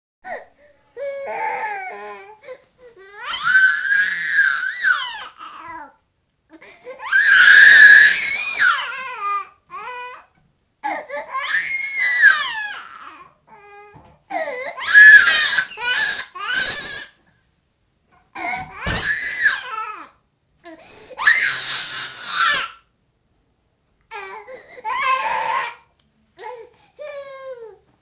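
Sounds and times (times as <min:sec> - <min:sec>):
baby screaming and crying: 0:03.0 - 0:06.0, 0:06.9 - 0:17.2, 0:18.4 - 0:20.2, 0:21.2 - 0:22.8, 0:24.1 - 0:25.9.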